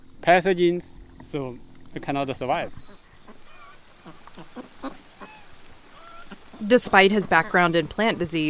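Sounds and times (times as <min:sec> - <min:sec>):
high-pitched insect drone: 0:00.0 - 0:08.4
speech: 0:00.2 - 0:02.9, 0:06.6 - 0:08.4
thin chirps: 0:02.2 - 0:08.4
ducks calling in a farm field: 0:02.4 - 0:08.4.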